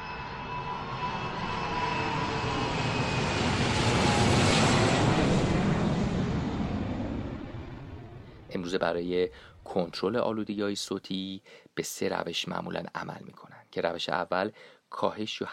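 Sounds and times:
loud steady airplane engine roar: 0.0s - 9.7s
speech: 8.7s - 15.5s.

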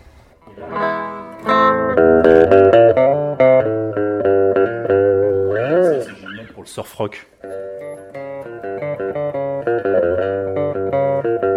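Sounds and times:
electric guitar with series out-of-phase pickups playing chords and notes: 0.0s - 6.6s, 7.4s - 11.5s
speech: 6.8s - 7.4s.

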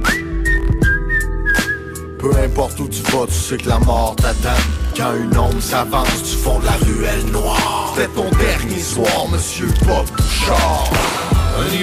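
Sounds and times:
person whistling a short melody: 0.0s - 2.7s, 8.3s - 11.8s
thumping bass-heavy beat: 0.0s - 11.8s
speech: 2.2s - 11.8s.

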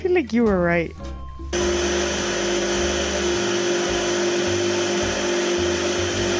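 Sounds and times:
speech: 0.1s - 1.1s
microwave oven running with electrical hum: 1.6s - 6.3s.

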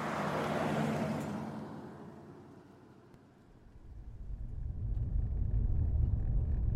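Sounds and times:
car engine and tire rumble driving along a road toward a mountain: 0.0s - 6.7s
wind noise: 3.8s - 6.7s.

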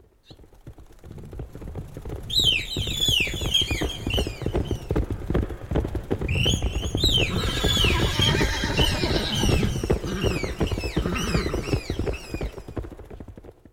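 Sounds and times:
stomping hooves: 0.0s - 13.7s
panicked horse squealing and whinnying: 7.1s - 11.8s.

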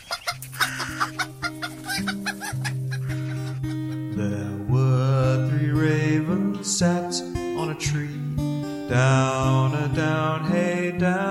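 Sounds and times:
hens clucking: 0.0s - 4.2s
musical backing: 0.3s - 11.2s
speech: 6.6s - 8.2s.

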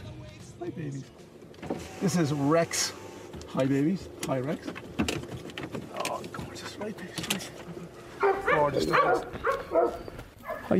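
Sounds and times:
speech: 0.6s - 5.3s, 6.8s - 10.1s
dog barking: 8.2s - 10.7s.

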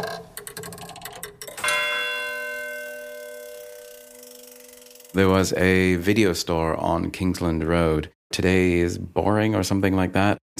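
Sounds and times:
clock mechanism clicking and whirring: 0.0s - 1.7s, 3.2s - 5.4s
clock bell striking the hour: 1.6s - 5.2s
speech: 5.2s - 10.5s.

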